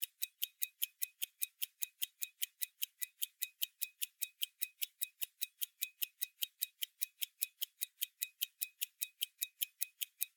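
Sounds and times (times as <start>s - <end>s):
pocket watch hand ticking: 0.0s - 10.3s.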